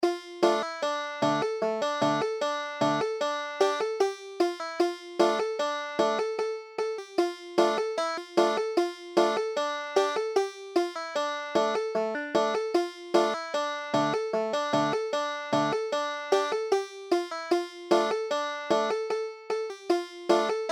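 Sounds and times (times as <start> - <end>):
banjo playing a nigun: 0.0 - 20.7.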